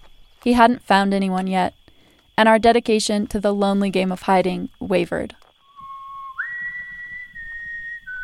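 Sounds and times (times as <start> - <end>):
speech: 0.4 - 1.8, 2.4 - 5.4
person whistling a short tune in a barn: 5.7 - 8.2.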